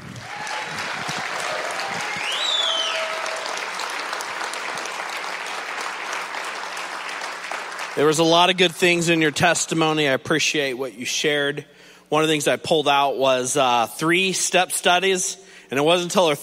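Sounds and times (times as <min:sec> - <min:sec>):
audience applauding a woman after her testimony: 0:00.0 - 0:08.6
faint cheers or whistles: 0:00.2 - 0:03.6
speech: 0:08.0 - 0:16.4.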